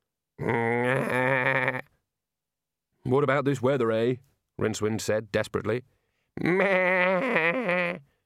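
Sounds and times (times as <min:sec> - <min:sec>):
speech: 0:00.4 - 0:01.4, 0:03.1 - 0:08.1
old sheep bleating while being sheared: 0:00.4 - 0:01.9, 0:06.4 - 0:08.0.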